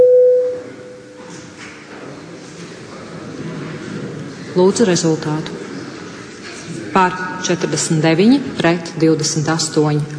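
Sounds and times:
parliamentary voting bell electronic signal tone: 0.0s - 1.1s
low murmur of a large room full of people: 0.0s - 10.1s
speech: 4.6s - 5.6s, 7.0s - 10.1s.

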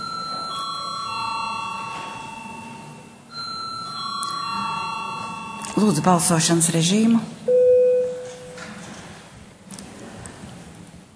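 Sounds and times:
electronic bell ringing to call members of parliament to a vote: 0.0s - 6.4s
speech: 5.8s - 7.6s.

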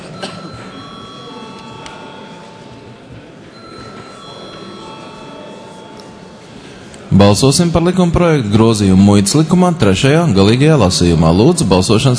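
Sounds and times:
faint murmur: 0.0s - 7.2s
electric parliament voting bell ringing: 0.2s - 6.8s
speech: 7.2s - 12.1s.

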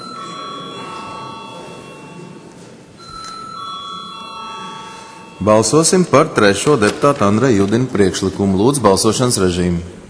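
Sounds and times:
electric bell ringing in a parliament chamber before a vote: 0.0s - 6.2s
speech: 5.4s - 10.0s.

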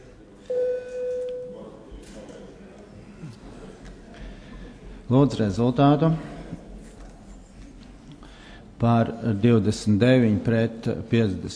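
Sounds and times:
low murmur of room noise in the parliament chamber: 0.0s - 11.5s
parliament voting signal electronic tone: 0.5s - 1.6s
speech: 5.1s - 6.3s, 8.8s - 11.5s.

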